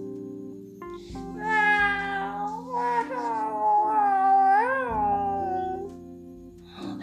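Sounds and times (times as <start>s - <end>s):
kitten meowing: 1.4s - 5.9s.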